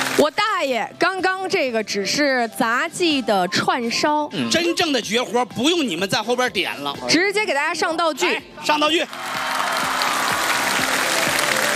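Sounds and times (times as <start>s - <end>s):
speech: 0.2s - 9.4s
audience applause at a live acrobatics stunt show: 8.9s - 11.7s.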